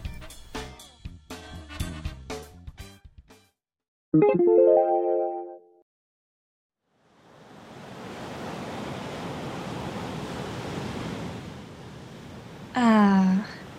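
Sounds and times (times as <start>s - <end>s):
speech: 4.1s - 5.2s
punchy musical hits: 4.2s - 5.6s
ocean surf: 7.2s - 12.8s.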